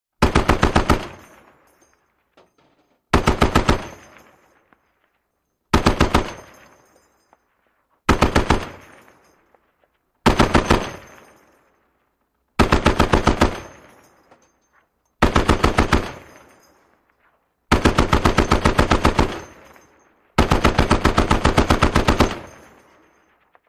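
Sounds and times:
.50 caliber machine gun long bursts: 0.2s - 1.2s, 3.2s - 4.0s, 5.8s - 6.4s, 8.1s - 8.8s, 10.3s - 11.1s, 12.6s - 13.8s, 15.2s - 16.3s, 17.7s - 19.6s, 20.4s - 22.6s
.50 caliber shell casings dropping: 0.8s - 12.2s, 12.9s - 23.6s.

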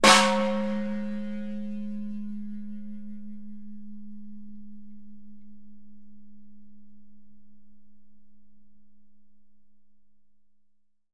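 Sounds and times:
Khmer temple bell in bell towers: 0.0s - 6.8s.

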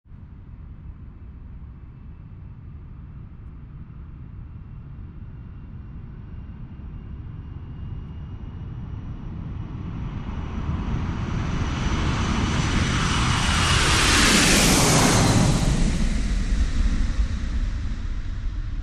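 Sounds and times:
Boeing 747 jet aircraft passing by: 5.4s - 18.8s.

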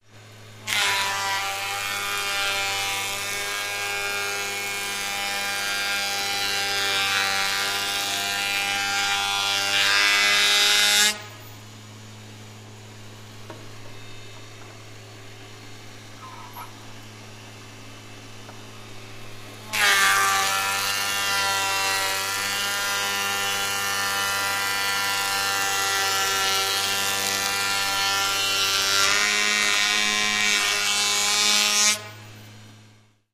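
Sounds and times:
carpentry machine: 0.1s - 32.9s.

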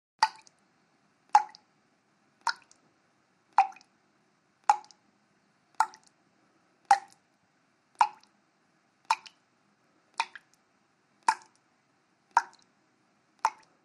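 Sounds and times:
water dripping steadily: 0.2s - 1.7s, 2.4s - 2.9s, 3.5s - 4.0s, 4.6s - 5.1s, 5.7s - 6.2s, 6.8s - 7.3s, 7.9s - 8.4s, 9.0s - 9.5s, 10.1s - 12.8s, 13.4s - 13.8s.

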